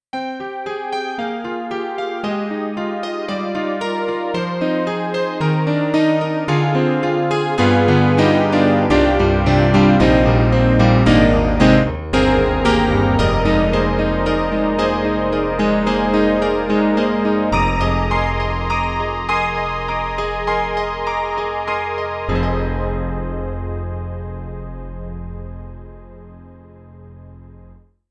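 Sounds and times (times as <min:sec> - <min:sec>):
Korg Triton-Rack layered synth piano: 0:00.1 - 0:27.8.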